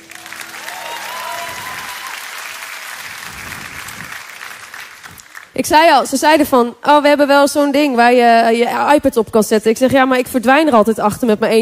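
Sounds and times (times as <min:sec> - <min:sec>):
crowd applauding for the band: 0:00.0 - 0:05.6
speech: 0:05.6 - 0:11.6.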